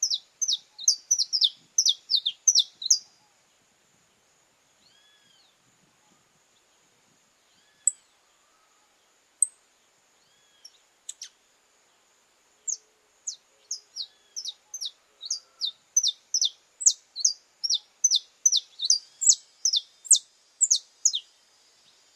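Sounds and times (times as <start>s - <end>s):
Belgian canary singing: 0.0s - 3.2s, 12.7s - 21.3s.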